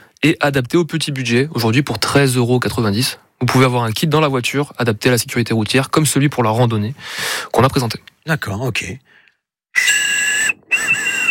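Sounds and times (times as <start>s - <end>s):
speech: 0.2s - 9.1s, 9.8s - 10.0s
small safety whistle blasts: 9.8s - 11.2s.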